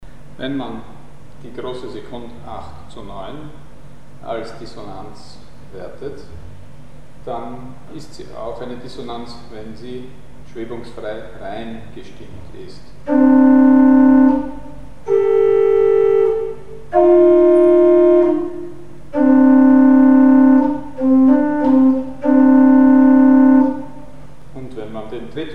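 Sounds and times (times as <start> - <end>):
dissonant chords in just intonation: 13.0 - 24.2.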